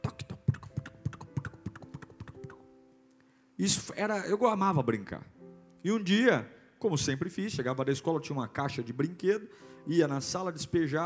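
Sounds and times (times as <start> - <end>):
tongue clicks imitating horse hooves galloping: 0.0 - 2.7
speech: 3.6 - 11.0.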